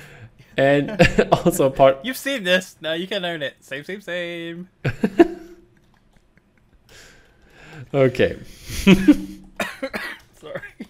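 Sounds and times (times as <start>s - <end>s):
speech: 0.6s - 5.4s, 7.9s - 10.1s
laughter: 8.7s - 9.9s
person coughing: 8.9s - 10.8s.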